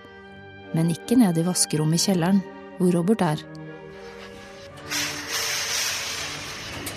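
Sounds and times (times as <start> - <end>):
speech: 0.8 - 3.5
garment steamer hissing over a shirt: 4.0 - 6.9.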